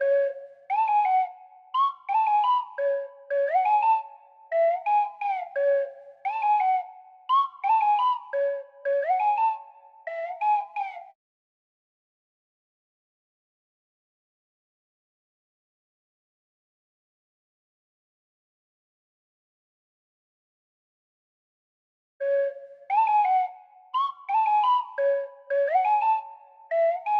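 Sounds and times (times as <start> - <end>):
flute melody in F sharp minor at 173 BPM: 0.0 - 11.2, 22.2 - 27.1.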